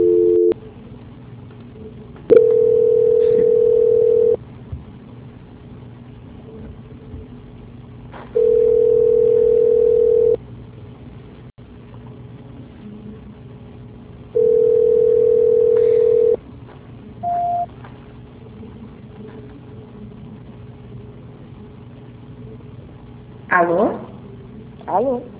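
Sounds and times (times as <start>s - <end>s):
telephone ringback tone while a call is being transferred: 0.0s - 0.6s, 2.3s - 4.4s, 8.4s - 10.4s, 14.4s - 16.4s, 17.2s - 17.7s.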